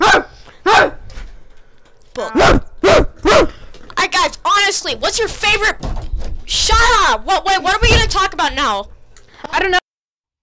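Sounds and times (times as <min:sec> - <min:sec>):
person imitating a barking dog: 0:00.0 - 0:01.0, 0:02.1 - 0:03.6
speech: 0:02.2 - 0:02.6, 0:04.8 - 0:05.9, 0:06.5 - 0:08.9, 0:09.6 - 0:09.8.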